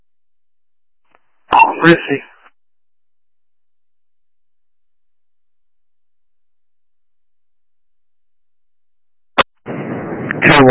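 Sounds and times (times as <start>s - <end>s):
speech: 1.8s - 2.3s
firework bang in a backyard: 9.6s - 10.6s.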